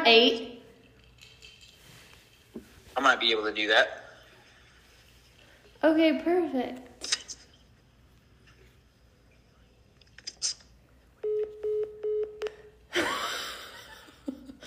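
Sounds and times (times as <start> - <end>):
speech: 0.1 - 0.5, 3.0 - 4.0, 5.8 - 7.1
electronic beeps of a phone call cutting off: 11.2 - 12.7
loud breathy burst of laughter: 12.9 - 14.6.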